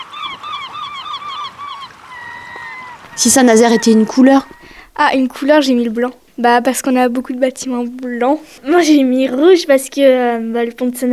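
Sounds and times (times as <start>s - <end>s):
several seagulls calling: 0.0s - 4.9s
speech: 3.2s - 11.1s.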